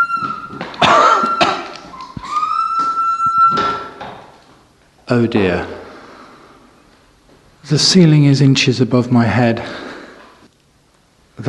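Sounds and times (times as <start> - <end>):
door hinge creaking open: 0.0 - 4.5
speech: 5.1 - 5.8, 7.7 - 9.8.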